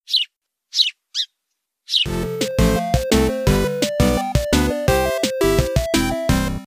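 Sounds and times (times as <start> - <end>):
high sparrow-like chirps: 0.0 - 2.2
bright rhythmic musical jingle with bouncy repeating notes: 2.1 - 6.6.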